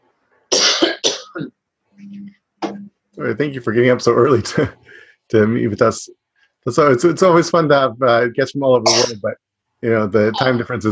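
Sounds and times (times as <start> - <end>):
harsh coughs: 0.5 - 1.5, 8.9 - 9.2
speech: 3.2 - 10.9.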